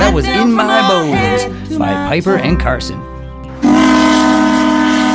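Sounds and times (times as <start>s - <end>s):
speech: 0.1s - 3.1s
steam whistle blowing: 3.6s - 5.1s.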